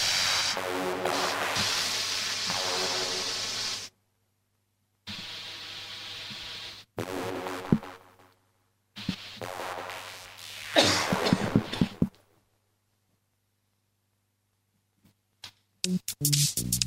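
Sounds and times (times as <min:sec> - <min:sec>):
steady hiss of noise: 0:00.0 - 0:16.8
person coughing: 0:10.8 - 0:12.0.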